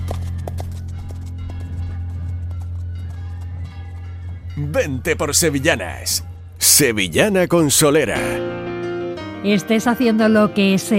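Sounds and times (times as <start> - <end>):
horse hooves clip-clopping: 0.0 - 4.6
speech: 4.6 - 8.6, 9.4 - 10.9.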